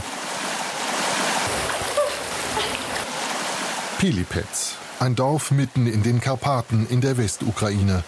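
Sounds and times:
rushing waterfall and mountain river: 0:00.0 - 0:08.0
speech: 0:04.0 - 0:08.0.

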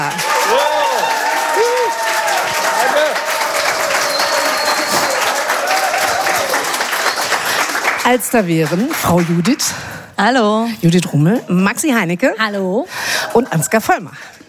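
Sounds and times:
cheers and whoops: 0:00.0 - 0:07.3
loud dense applause from a large audience: 0:00.0 - 0:09.6
speech: 0:08.1 - 0:14.3.

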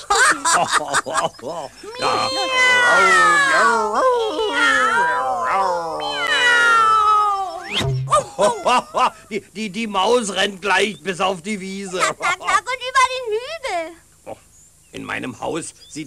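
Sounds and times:
laughter: 0:00.0 - 0:06.6, 0:07.3 - 0:09.5, 0:11.8 - 0:12.7
speech: 0:00.6 - 0:05.9, 0:07.7 - 0:12.5, 0:15.0 - 0:16.0
cat meowing and yowling: 0:02.0 - 0:03.9, 0:04.5 - 0:07.7.

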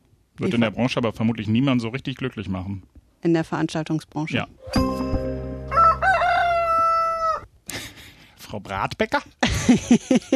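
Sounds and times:
speech: 0:00.4 - 0:05.2, 0:08.5 - 0:10.3
rooster crowing: 0:05.7 - 0:07.5
laughter: 0:09.4 - 0:10.3.

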